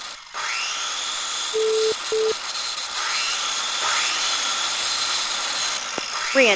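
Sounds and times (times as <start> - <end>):
power saw cutting wooden floorboards: 0.0 - 6.5
short tonal beeps: 1.6 - 2.4.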